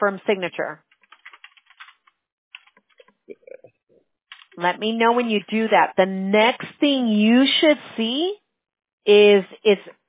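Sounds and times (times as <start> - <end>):
speech: 0.0 - 0.9, 4.6 - 8.4, 9.0 - 10.0
rapid typing on a computer keyboard entering a name for a signature: 0.9 - 3.1.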